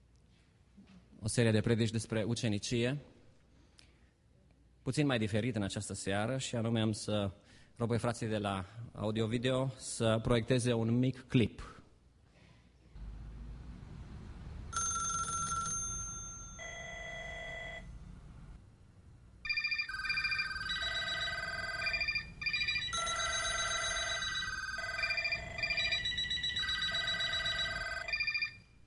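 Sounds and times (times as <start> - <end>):
speech: 1.2 - 3.2, 4.8 - 11.8
telephone ringing with bright multi-tone electronic ring: 14.7 - 17.9, 19.4 - 28.8.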